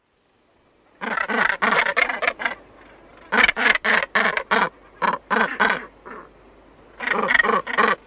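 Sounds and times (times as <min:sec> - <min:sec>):
Northern gannet harsh grating calls: 0:01.0 - 0:02.6, 0:03.3 - 0:06.3, 0:07.0 - 0:08.0.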